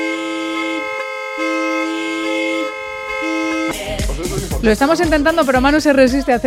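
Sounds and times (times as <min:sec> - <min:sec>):
car horn blaring in long sustained honks: 0:00.0 - 0:04.2
speech: 0:04.6 - 0:06.4.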